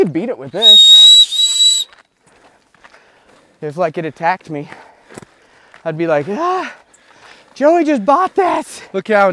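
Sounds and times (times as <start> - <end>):
speech: 0.0 - 1.2, 3.6 - 4.8, 5.8 - 6.8, 7.6 - 9.3
handheld safety whistle blast: 0.6 - 1.9.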